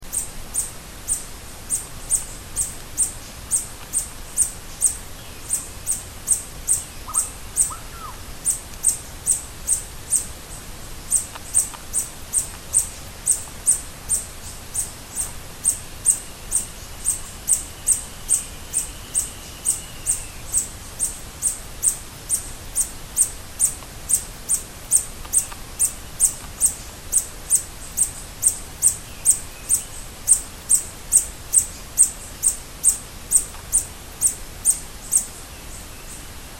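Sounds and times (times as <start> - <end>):
white-banded hummingbird: 0.0 - 36.5.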